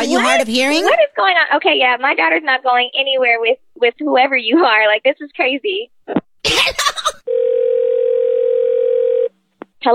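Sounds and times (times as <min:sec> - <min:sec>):
speech: 0:00.0 - 0:06.8
telephone dial tone after hanging up a call: 0:07.3 - 0:09.4.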